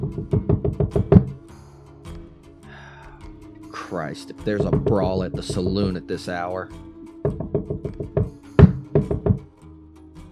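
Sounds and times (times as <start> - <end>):
knocking on the wooden door of a jail: 0.0 - 1.4, 4.6 - 5.9, 7.3 - 9.4
speech: 4.0 - 6.9.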